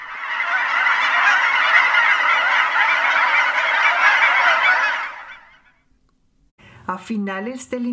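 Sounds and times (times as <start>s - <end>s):
large flock of geese honking: 0.0s - 5.8s
speech: 6.9s - 7.9s.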